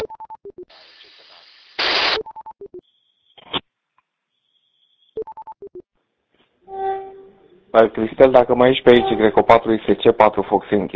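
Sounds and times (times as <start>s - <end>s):
static blast: 0.8s - 2.2s
telephone touch-tone dialing beeps: 5.2s - 5.8s
steady high tone: 6.7s - 7.6s, 8.8s - 9.6s
speech: 7.8s - 10.9s.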